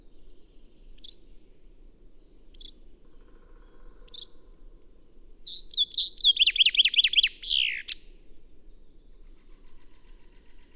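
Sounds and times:
Common chaffinch Fringilla coelebs song with sharp high notes and falling trill: 0.1s - 1.4s, 2.2s - 2.8s, 5.4s - 8.0s.

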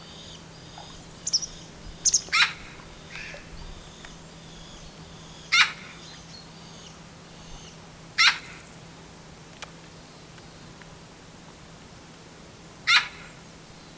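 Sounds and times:
Eurasian magpie Pica pica calls: 0.1s - 8.6s, 12.9s - 13.3s.

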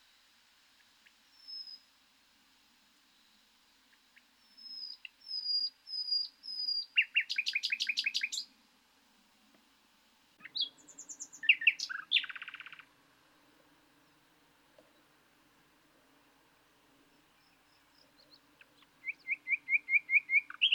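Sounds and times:
common nightingale song, Luscinia megarhynchos: 0.8s - 1.9s, 3.8s - 8.6s, 10.4s - 12.9s, 17.0s - 20.7s.

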